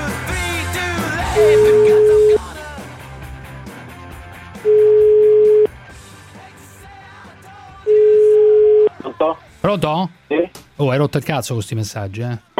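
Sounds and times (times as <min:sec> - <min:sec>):
music: 0:00.0 - 0:12.5
speech: 0:01.4 - 0:02.0, 0:09.7 - 0:12.5
telephone ringback tone: 0:01.4 - 0:02.4, 0:04.6 - 0:05.7, 0:07.9 - 0:09.0.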